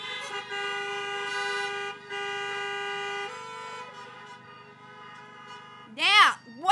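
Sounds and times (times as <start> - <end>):
several car horns honking: 0.0 - 6.7.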